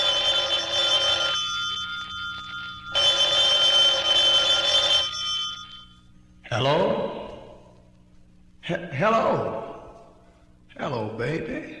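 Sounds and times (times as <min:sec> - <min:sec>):
old-style telephone bell ringing: 0:00.0 - 0:06.3
speech: 0:08.7 - 0:09.6, 0:10.9 - 0:11.7.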